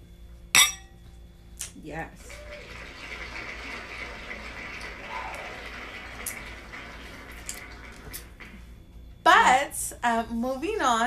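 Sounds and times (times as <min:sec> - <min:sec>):
glasses clinking in a toast: 0:00.6 - 0:01.0
speech: 0:01.8 - 0:02.6, 0:10.0 - 0:11.0.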